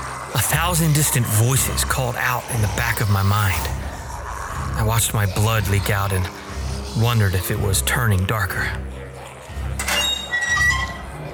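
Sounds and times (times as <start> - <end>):
speech: 0.3 - 3.8, 4.8 - 8.9
low heavy rumble: 0.4 - 9.0
door squeaking open: 9.8 - 11.0.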